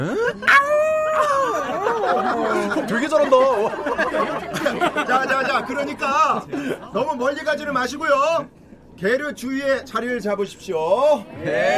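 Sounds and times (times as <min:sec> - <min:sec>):
person imitating a wolf howl at a desert camp: 0:00.1 - 0:02.1
laughter: 0:00.1 - 0:07.4
speech: 0:02.1 - 0:11.7.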